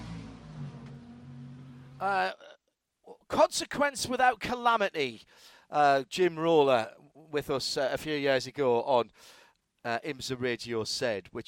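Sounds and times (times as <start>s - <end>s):
race car engine idling and revving: 0.0s - 2.0s
speech: 2.0s - 2.5s, 3.3s - 11.4s.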